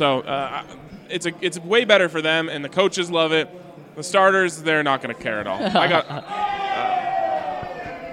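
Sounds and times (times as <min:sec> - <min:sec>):
speech: 0:00.0 - 0:06.6
laughter: 0:05.5 - 0:06.9
crowd cheering: 0:05.8 - 0:08.1.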